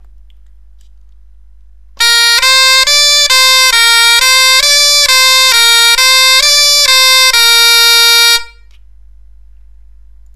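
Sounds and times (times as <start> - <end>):
musical scale B C D: 2.0 - 8.6.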